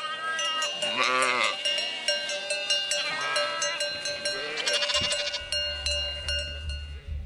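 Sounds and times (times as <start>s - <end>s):
sheep bleating: 0.0s - 2.1s, 3.0s - 7.1s
ringing bell-like tones: 0.0s - 7.2s
low rumble: 5.4s - 7.2s.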